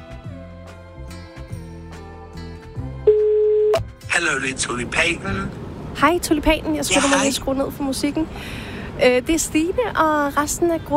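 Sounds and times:
melodic electronic phone ringtone: 3.1 - 3.8
speech: 4.3 - 10.9.

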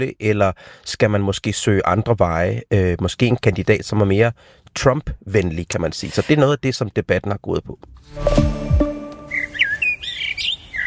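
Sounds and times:
speech: 0.0 - 8.6
birds chirping and singing: 9.3 - 10.8.

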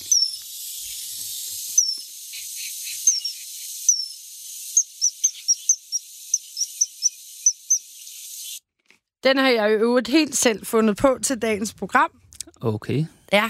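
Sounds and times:
whistled imitation of a great tit call: 0.0 - 0.9, 1.7 - 8.6
speech: 9.2 - 13.4.

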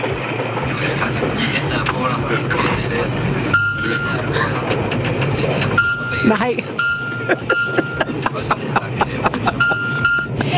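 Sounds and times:
indistinct voices: 0.0 - 10.5
rhythmic clacking: 0.0 - 10.5
laughter: 0.7 - 2.8, 3.8 - 5.4, 6.9 - 10.5
speech: 2.1 - 10.5
shrill electronic beep from train loudspeaker system: 3.5 - 4.3, 5.8 - 8.1, 9.6 - 10.4.

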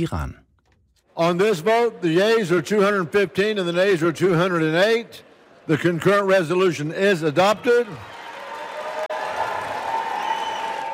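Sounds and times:
speech: 0.0 - 0.4, 1.2 - 8.2
applause and cheering in the US House of Representatives after a resolution passed: 5.4 - 10.9.

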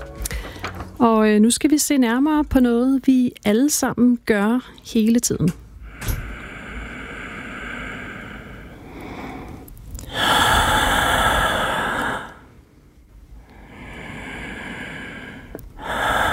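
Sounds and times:
person breathing in slow long airy inhales and exhales: 0.2 - 1.0, 5.8 - 12.6, 13.4 - 16.2
speech: 1.0 - 5.6.

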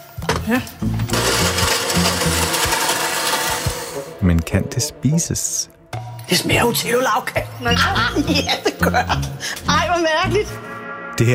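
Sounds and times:
speech: 0.5 - 1.0, 4.2 - 11.3
blender churning cake and chocolate milk: 0.8 - 4.2
laughter: 7.6 - 9.5.

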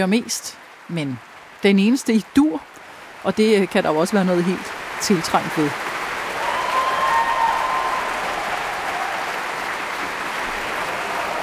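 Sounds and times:
speech: 0.0 - 5.9
concert audience applauding in a Berlin concert hall after a symphony: 4.1 - 11.4.

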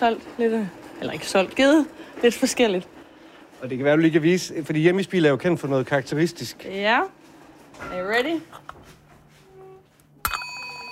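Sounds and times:
speech: 0.0 - 3.0, 3.6 - 7.2, 7.8 - 8.8
small broken bell with a spoon on it struck: 10.2 - 10.9.

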